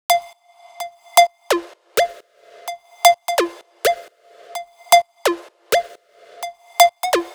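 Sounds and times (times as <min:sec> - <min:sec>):
electro house melody: 0:01.5 - 0:07.3.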